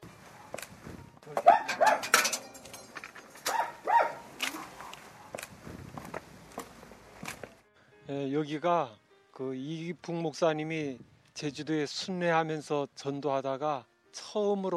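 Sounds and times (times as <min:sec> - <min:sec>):
footsteps: 0:00.0 - 0:07.6
dog barking: 0:01.4 - 0:02.1, 0:03.4 - 0:05.4
speech: 0:08.3 - 0:14.7.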